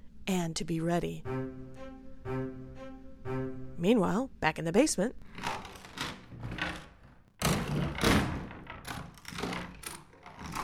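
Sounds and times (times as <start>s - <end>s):
speech: 0.3s - 1.4s, 3.8s - 5.3s
door lock and handle clicking and rattling: 5.3s - 10.6s.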